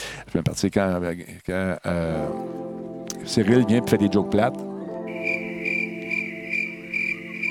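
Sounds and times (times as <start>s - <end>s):
speech: 0.3s - 5.4s
cricket chirping sound effect from a sound gadget: 5.1s - 7.4s.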